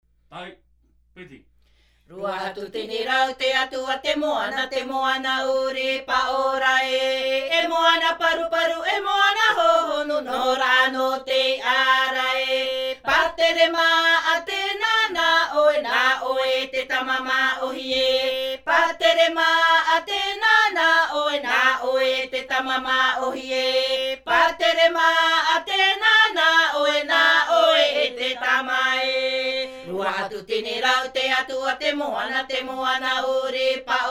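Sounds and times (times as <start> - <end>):
Maohi polyphonic himene tarava chanting from Raromatai: 2.1 - 34.1.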